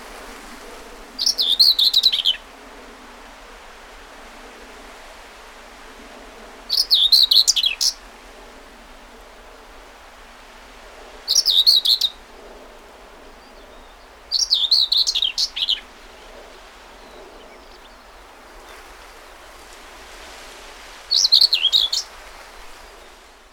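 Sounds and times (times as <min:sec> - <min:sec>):
Common whitethroat song: 0:01.2 - 0:02.4, 0:06.7 - 0:08.1, 0:11.3 - 0:19.5, 0:21.1 - 0:22.2.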